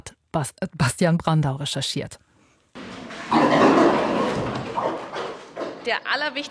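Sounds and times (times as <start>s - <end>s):
speech: 0.4s - 2.2s, 5.8s - 6.4s
pigs grunting in a barn: 3.3s - 5.8s.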